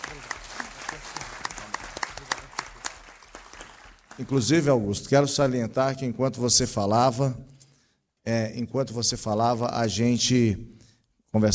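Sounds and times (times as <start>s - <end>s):
audience applauding for a speaker: 0.0s - 4.7s
speech: 4.2s - 7.5s, 8.3s - 11.5s.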